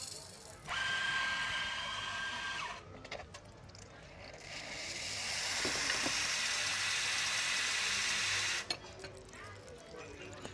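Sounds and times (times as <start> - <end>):
faint café murmur: 0.0 - 10.5
café coffee machine hissing and whirring making flat white with cow's milk: 0.1 - 2.9, 4.2 - 8.8.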